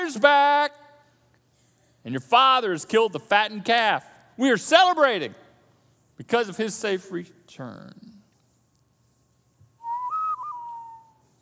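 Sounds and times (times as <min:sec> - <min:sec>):
speech: 0:00.1 - 0:00.8, 0:02.0 - 0:05.4, 0:06.2 - 0:08.1
human whistling a western movie theme melody: 0:09.8 - 0:11.2.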